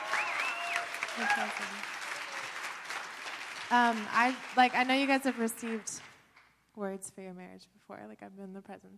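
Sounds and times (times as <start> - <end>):
person whooping: 0.0 - 1.7
roomful of people applauding: 0.0 - 6.3
speech: 1.2 - 2.0, 3.7 - 6.1, 6.8 - 8.9.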